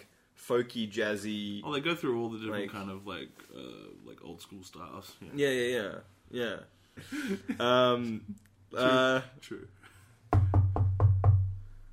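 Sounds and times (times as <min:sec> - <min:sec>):
speech: 0:00.5 - 0:09.9
knocking: 0:10.3 - 0:11.6.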